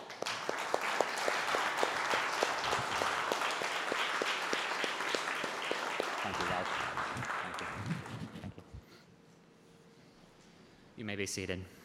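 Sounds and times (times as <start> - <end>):
congregation applauding: 0.0 - 8.7
speech: 11.2 - 11.8.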